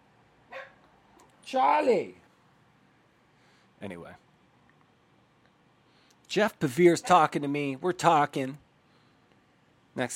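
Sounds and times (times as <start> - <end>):
quiet hiss: 0.0 - 10.1
dog barking: 0.5 - 0.9
speech: 1.5 - 2.2, 3.8 - 4.3, 6.3 - 8.6, 10.0 - 10.1.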